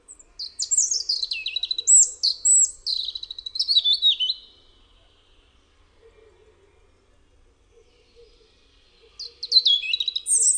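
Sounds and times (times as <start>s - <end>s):
European robin singing: 0.0s - 5.0s, 7.9s - 10.5s.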